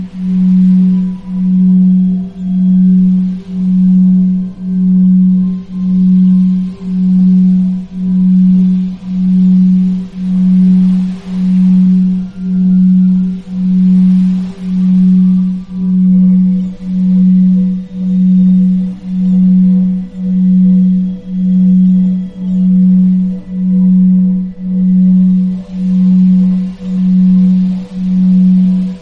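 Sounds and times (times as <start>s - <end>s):
faint higher tones: 0.0s - 29.0s
low pure hum of binaural beats: 0.0s - 29.0s
soft airy washes: 0.0s - 29.0s.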